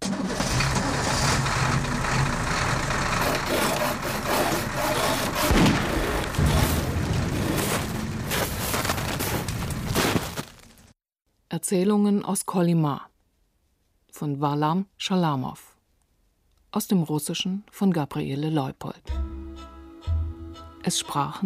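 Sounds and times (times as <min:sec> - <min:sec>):
truck engine labouring uphill over a mountain pass in the Yablonovy range: 0:00.0 - 0:10.8
speech: 0:11.7 - 0:13.1, 0:14.2 - 0:15.7, 0:16.7 - 0:19.3, 0:20.8 - 0:21.4.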